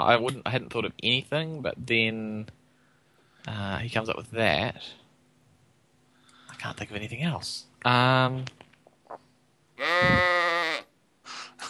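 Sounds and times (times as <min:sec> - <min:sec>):
speech: 0:00.0 - 0:02.6, 0:03.4 - 0:05.0, 0:06.6 - 0:08.6
sheep bleating: 0:09.8 - 0:10.9.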